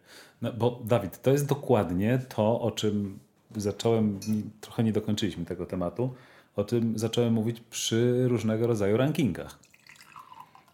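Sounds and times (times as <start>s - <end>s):
speech: 0.4s - 9.7s
water pouring into a glass: 9.5s - 10.7s.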